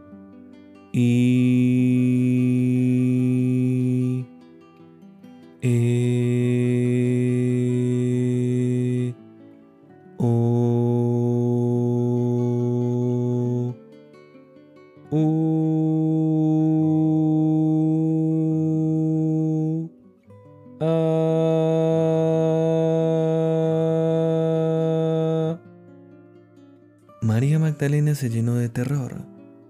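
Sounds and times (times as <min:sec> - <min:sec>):
speech: 0:00.9 - 0:01.7, 0:05.6 - 0:06.0, 0:28.2 - 0:29.2
single voice chanting long sustained vowel tones: 0:00.9 - 0:04.3, 0:05.6 - 0:09.2, 0:10.2 - 0:13.8, 0:15.1 - 0:19.9, 0:20.8 - 0:25.7.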